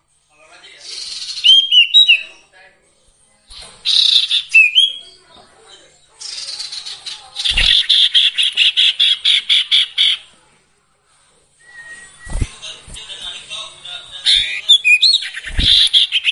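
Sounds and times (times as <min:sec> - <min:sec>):
song with whistled and chattering phrases: 0:00.8 - 0:02.5, 0:03.5 - 0:10.3, 0:14.2 - 0:16.2.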